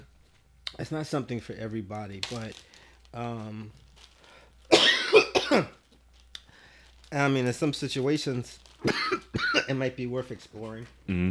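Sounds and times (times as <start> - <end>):
speech: 0.8 - 3.8, 5.5 - 5.8, 7.1 - 11.2
person coughing: 4.7 - 5.7, 8.8 - 9.8.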